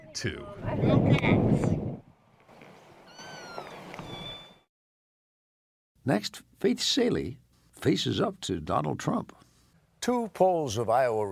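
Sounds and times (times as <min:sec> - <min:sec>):
speech: 0:00.2 - 0:02.0, 0:06.0 - 0:11.3
cat meowing: 0:03.1 - 0:04.4.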